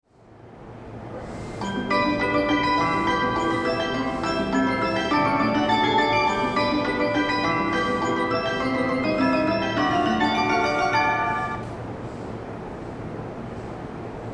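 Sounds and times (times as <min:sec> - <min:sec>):
melody at Minamifunabashi: 0:01.6 - 0:11.7.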